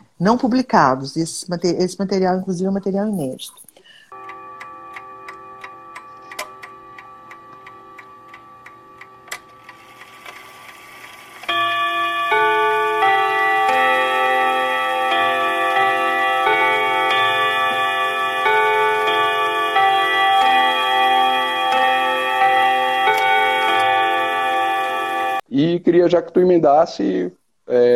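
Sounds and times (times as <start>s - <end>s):
speech: 0.2s - 3.7s, 26.0s - 27.9s
clock chiming melody: 4.1s - 10.0s, 11.5s - 25.4s
clock ticking: 4.1s - 25.4s.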